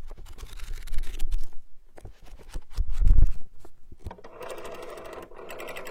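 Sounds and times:
pages flipped and handled: 0.1 - 3.4.

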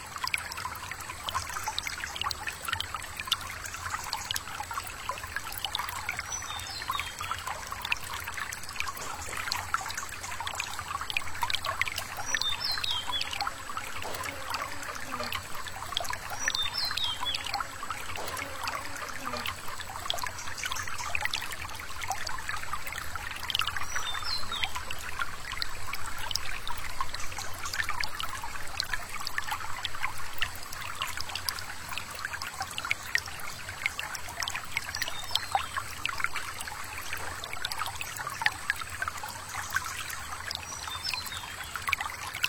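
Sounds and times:
small forest stream trickling and babbling: 0.0 - 42.4
bee buzzing: 14.1 - 15.5, 18.2 - 19.5.

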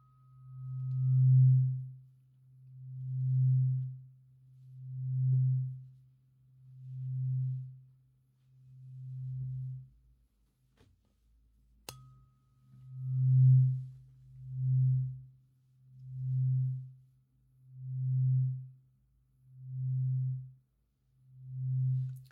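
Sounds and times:
faint higher ring: 0.0 - 2.0, 11.9 - 15.2
low tuning fork tone: 0.0 - 9.9, 11.7 - 22.2.

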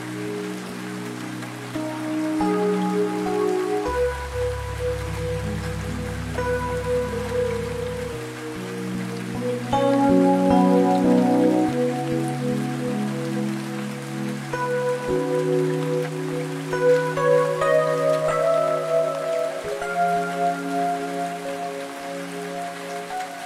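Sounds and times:
rain falling as a fine hiss: 0.0 - 23.4
soft relaxing piano chords: 0.0 - 23.4.

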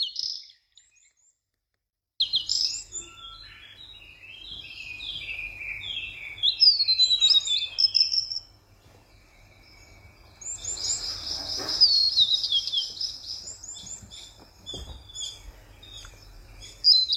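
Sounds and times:
early-morning birdsong with chirps and trills from several birds: 0.0 - 1.3, 2.2 - 17.1
brief thump: 13.8 - 15.1.

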